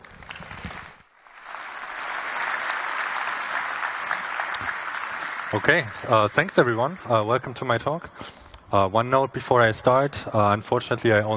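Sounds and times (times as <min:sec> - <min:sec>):
audience applause: 0:00.0 - 0:08.0
speech: 0:05.5 - 0:11.3.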